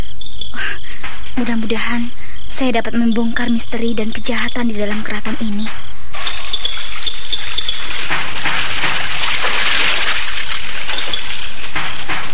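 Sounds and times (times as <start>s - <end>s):
speech: 0.5s - 5.9s
hot water being poured: 6.1s - 12.3s.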